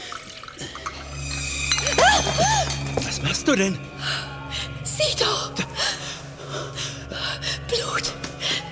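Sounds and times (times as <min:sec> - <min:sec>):
herbal tea pouring from a pot into a cup: 0:00.0 - 0:01.4
glassy clink: 0:00.1 - 0:03.1
low hum: 0:00.5 - 0:07.7
speech: 0:03.4 - 0:04.2.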